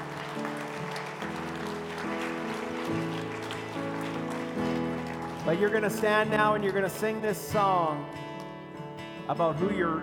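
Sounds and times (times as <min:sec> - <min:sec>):
church audience applauding: 0:00.0 - 0:07.2
speech: 0:05.5 - 0:08.2, 0:09.3 - 0:10.0.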